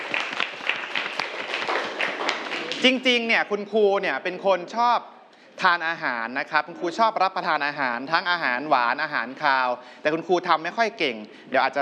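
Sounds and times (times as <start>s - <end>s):
applause for a student in a classroom: 0.0s - 3.2s
speech: 2.8s - 11.8s.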